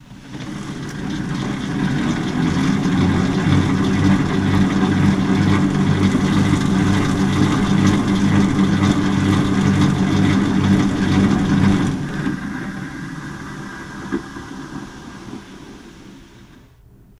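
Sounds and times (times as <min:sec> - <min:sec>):
stationary exercise bike riding: 0:00.0 - 0:17.1.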